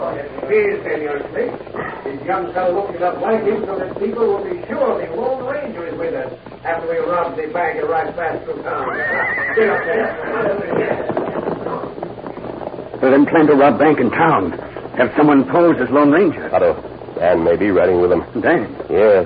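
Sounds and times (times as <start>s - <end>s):
speech: 0.2s - 11.2s, 13.0s - 19.2s
several horses whinnying and neighing on a trail in a gully: 8.7s - 11.6s.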